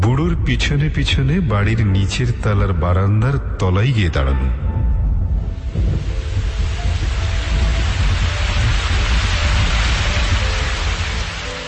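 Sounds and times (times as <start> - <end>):
speech: 0.2 - 4.6
heavy rain pouring outside the ground-floor veranda of a house: 5.4 - 11.6.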